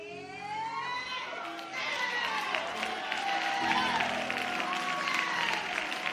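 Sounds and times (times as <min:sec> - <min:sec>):
voices calling out and cheering: 0:00.0 - 0:06.1
audience clapping: 0:01.3 - 0:06.1.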